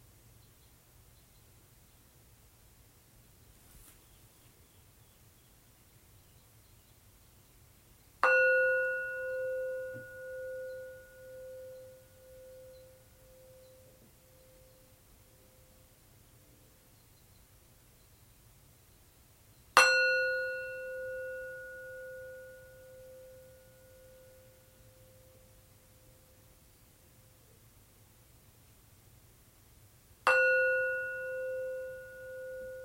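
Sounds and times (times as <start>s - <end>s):
meditation bell struck: 8.2s - 15.7s, 19.8s - 25.5s, 30.3s - 32.8s.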